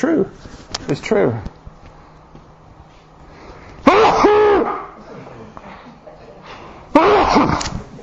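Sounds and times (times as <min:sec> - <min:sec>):
speech: 0:00.0 - 0:01.6
person sneezing: 0:03.8 - 0:04.9, 0:06.9 - 0:07.7.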